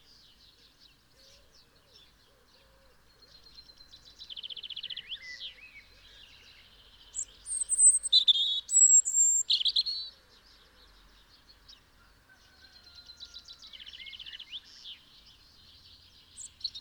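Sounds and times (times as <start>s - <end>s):
European robin song, Erithacus rubecula: 3.6s - 10.1s, 13.9s - 16.7s.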